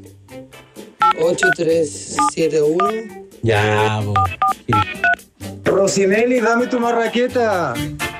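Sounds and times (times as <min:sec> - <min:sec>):
speech: 0:01.2 - 0:05.0, 0:05.8 - 0:08.1
telephone keypad dialing tones: 0:04.2 - 0:05.2.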